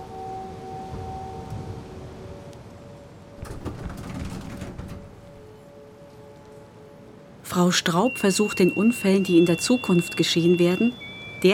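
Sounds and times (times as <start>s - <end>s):
steady mechanical hum: 0.0s - 7.5s
elevator door sliding shut: 3.4s - 5.6s
rattling clunks: 3.4s - 5.6s
speech: 7.6s - 11.5s.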